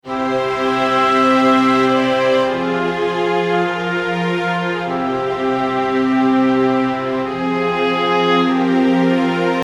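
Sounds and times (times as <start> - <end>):
short RPG background music: 0.0 - 9.6.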